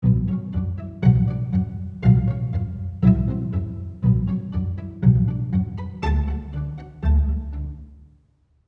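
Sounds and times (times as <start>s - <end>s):
pizzicato strings: 0.0s - 8.2s.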